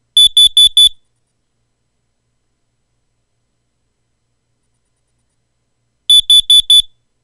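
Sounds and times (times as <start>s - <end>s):
carbon monoxide alarm beeps: 0.2s - 1.0s, 6.1s - 7.0s.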